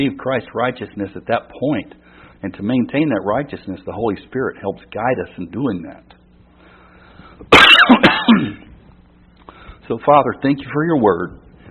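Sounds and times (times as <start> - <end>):
speech: 0.0 - 6.2, 7.4 - 8.1, 9.9 - 11.4
person coughing and clearing throat: 7.5 - 8.7.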